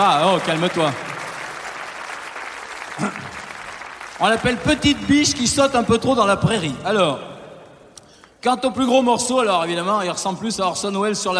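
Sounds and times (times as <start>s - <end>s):
speech: 0.0s - 1.1s, 4.2s - 7.3s, 8.4s - 11.3s
audience applause for a contestant called up on stage: 0.0s - 4.9s.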